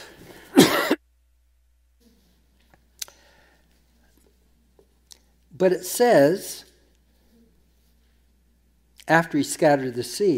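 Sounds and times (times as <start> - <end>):
person coughing: 0.5 - 1.0
throat clearing: 0.6 - 1.0
speech: 5.6 - 6.7, 9.1 - 10.3.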